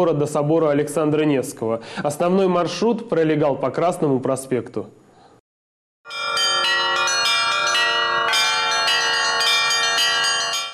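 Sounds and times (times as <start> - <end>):
speech: 0.0 - 5.0
church bells ringing during an Easter procession in Novosibirsk: 6.1 - 10.7.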